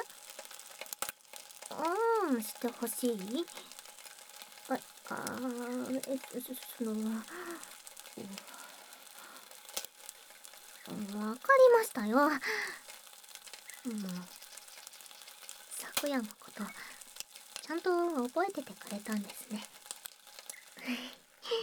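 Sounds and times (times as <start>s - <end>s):
bacon sizzling and crackling in a frying pan: 0.0s - 21.6s
speech: 1.7s - 3.8s, 4.7s - 8.6s, 10.9s - 12.8s, 13.8s - 14.4s, 16.0s - 16.9s, 17.7s - 19.8s, 20.8s - 21.6s.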